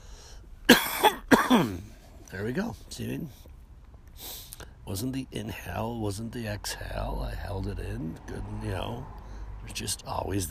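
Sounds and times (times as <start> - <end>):
person coughing: 0.7 - 1.9
speech: 1.5 - 3.5, 4.2 - 10.4.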